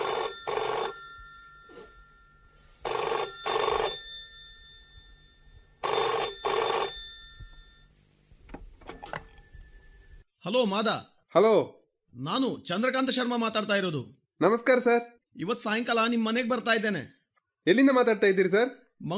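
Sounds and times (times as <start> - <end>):
office telephone bell ringing: 0.0 - 8.0, 8.8 - 10.3
speech: 10.5 - 19.1.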